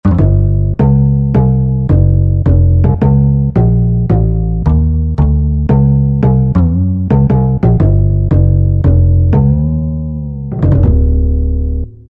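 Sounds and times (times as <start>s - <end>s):
Korg M1 synthesizer bass: 0.0s - 12.0s.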